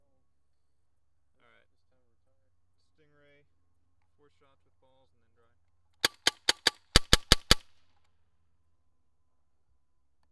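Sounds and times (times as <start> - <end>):
guns firing: 6.0 - 7.6.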